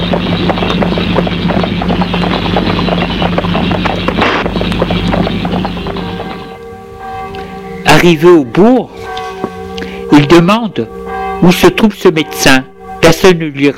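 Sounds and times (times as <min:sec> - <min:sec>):
horse hooves clip-clopping: 0:00.0 - 0:07.6
speech: 0:08.0 - 0:09.0, 0:10.1 - 0:13.7.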